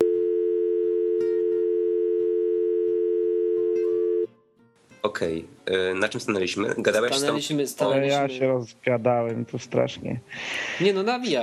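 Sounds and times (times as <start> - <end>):
telephone tone after hanging up and redialing: 0.0 - 4.3
speech: 5.0 - 11.4.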